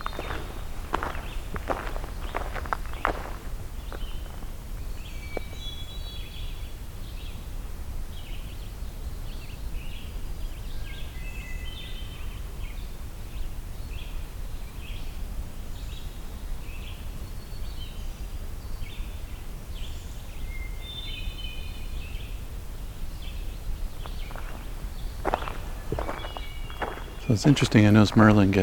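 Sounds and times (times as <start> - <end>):
footsteps crunching: 0.0 - 5.7, 23.8 - 28.6
hermit thrush singing flutelike phrases: 0.0 - 7.4, 19.8 - 28.6
steady outdoor hiss: 0.0 - 28.6
speech: 27.3 - 28.6.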